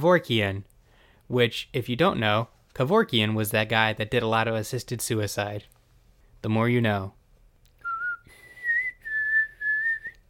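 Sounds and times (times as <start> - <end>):
speech: 0.0 - 0.7, 1.3 - 5.8, 6.4 - 7.2
thin feeble whistle of breathy notes: 7.8 - 10.2.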